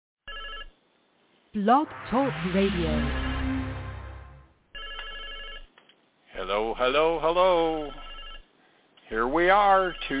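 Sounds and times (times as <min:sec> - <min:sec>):
telephone ringing with an electronic trill: 0:00.3 - 0:00.7, 0:04.7 - 0:05.7, 0:07.9 - 0:08.5
speech: 0:01.5 - 0:03.3, 0:06.5 - 0:08.0, 0:09.1 - 0:10.1
low music: 0:01.7 - 0:04.6.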